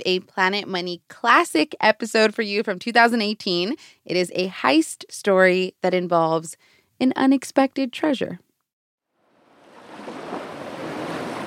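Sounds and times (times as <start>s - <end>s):
speech: 0.0s - 8.4s
ocean surf rolling in at a beach: 9.3s - 11.4s.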